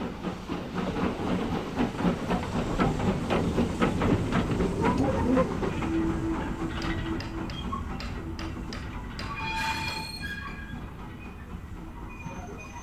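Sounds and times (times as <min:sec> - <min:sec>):
steam train passing by: 0:00.0 - 0:12.8.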